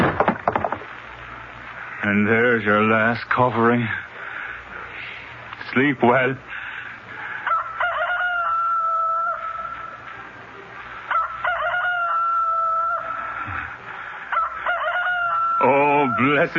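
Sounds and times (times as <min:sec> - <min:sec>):
faint low hum: 0:00.0 - 0:16.5
speech: 0:02.1 - 0:04.1, 0:05.8 - 0:06.5, 0:16.2 - 0:16.5
rooster crowing: 0:07.2 - 0:10.2, 0:11.0 - 0:16.5.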